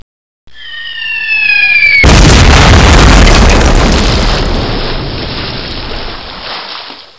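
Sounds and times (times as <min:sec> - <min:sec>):
boom: 0:01.2 - 0:05.6
splash: 0:02.4 - 0:07.1.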